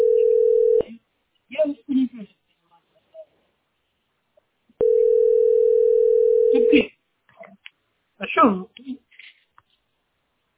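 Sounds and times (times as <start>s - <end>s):
telephone dial tone from an off-hook receiver: 0.0s - 0.8s, 4.8s - 6.7s
speech: 8.4s - 9.0s.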